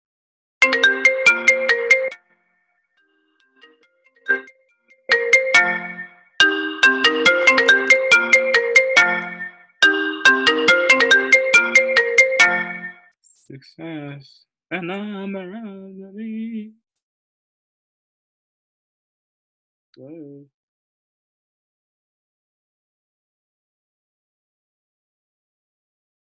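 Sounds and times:
FaceTime video call ringtone on a phone: 0.6s - 2.2s, 3.6s - 13.1s
speech: 13.7s - 16.8s, 20.0s - 20.6s.

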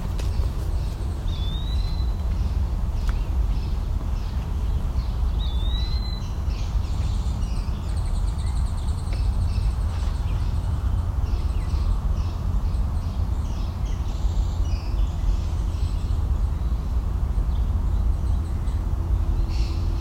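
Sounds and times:
European starlings calling: 0.0s - 19.9s
constant low rumble of wind: 0.0s - 19.9s.

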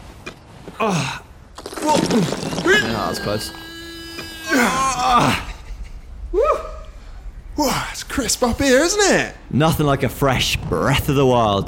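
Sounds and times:
speech: 0.7s - 1.2s, 1.8s - 3.6s, 4.5s - 5.4s, 7.6s - 11.6s
two people imitating strenuous effort of climbing with groans: 0.8s - 6.9s.

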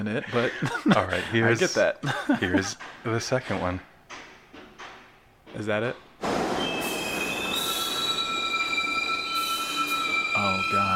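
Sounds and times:
laughter: 0.0s - 2.8s
speech: 0.0s - 3.9s, 5.5s - 6.4s, 10.4s - 10.9s
train brakes squealing as it stops: 6.3s - 10.9s
train wheels rumbling on rails: 6.4s - 10.9s.

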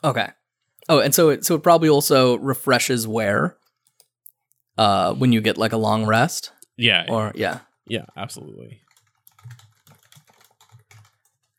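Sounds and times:
speech: 0.0s - 3.6s, 4.8s - 8.8s
typing on a computer keyboard: 8.8s - 11.5s.

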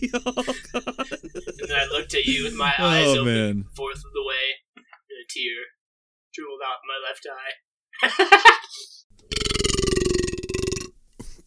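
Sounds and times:
speech: 0.0s - 0.9s, 2.2s - 4.0s, 7.0s - 8.8s
laughter: 0.0s - 3.7s, 8.0s - 8.8s
brief vocal sound: 2.3s - 3.8s
loud drawn-out burp with deep rattling texture: 9.2s - 11.0s.

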